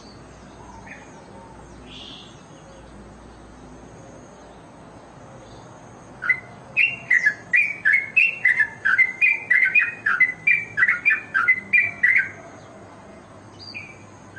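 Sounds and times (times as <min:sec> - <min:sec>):
Oriental magpie-robin whistling and chirping: 0:00.0 - 0:03.0, 0:05.5 - 0:12.6, 0:13.5 - 0:14.3.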